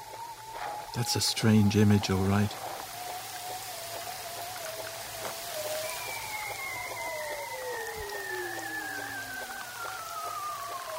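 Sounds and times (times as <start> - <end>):
crackling hiss: 0.0 - 10.9
speech: 1.0 - 2.7
male bearded seals singing underwater: 3.3 - 10.9.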